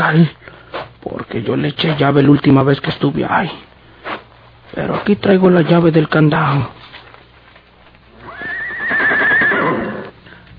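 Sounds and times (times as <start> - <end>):
speech: 0.0 - 0.5, 1.3 - 3.7, 4.8 - 6.8
rustling: 0.6 - 10.5
horse neighing loudly: 8.1 - 10.2.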